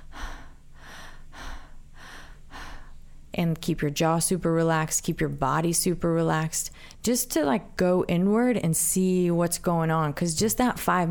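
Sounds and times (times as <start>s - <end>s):
deep rhythmic breathing: 0.0s - 3.4s
speech: 3.4s - 11.0s.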